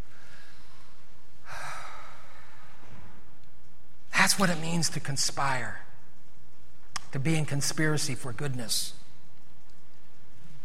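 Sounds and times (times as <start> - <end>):
people breathing in together: 0.1 - 3.0
speech: 4.2 - 5.8, 7.1 - 9.0.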